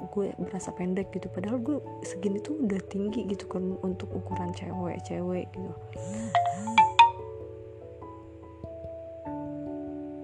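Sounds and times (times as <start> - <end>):
speech: 0.2 - 6.7
WhatsApp incoming message notification tone: 6.1 - 7.2.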